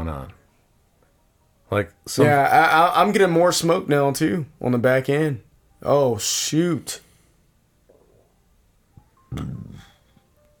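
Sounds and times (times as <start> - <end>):
speech: 0.0 - 0.4, 1.7 - 7.0, 9.3 - 9.8
short throaty burp: 9.3 - 10.0.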